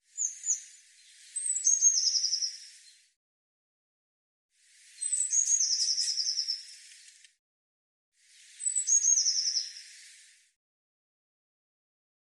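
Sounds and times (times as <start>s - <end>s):
Eurasian blue tit song: 0.1s - 3.0s, 4.9s - 7.2s, 8.4s - 10.2s.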